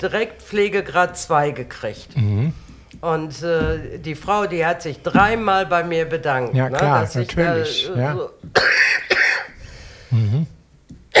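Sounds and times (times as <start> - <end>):
speech: 0.0 - 9.1
raspy throat-clearing: 2.1 - 2.8, 8.5 - 11.1
harsh broadband coughs in a coughing fit: 8.5 - 9.6.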